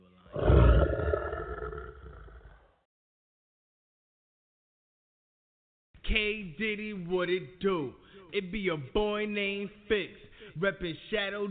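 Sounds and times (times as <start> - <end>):
deep lion roar sound effect: 0.3 - 2.8
speech: 6.2 - 11.4.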